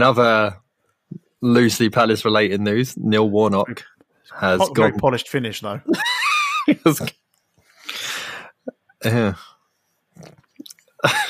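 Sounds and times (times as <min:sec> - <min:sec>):
speech: 0:00.0 - 0:00.6, 0:01.4 - 0:07.2, 0:09.0 - 0:09.5, 0:11.0 - 0:11.2
breathy exhale: 0:07.8 - 0:08.6
person gulping beer: 0:10.2 - 0:11.0.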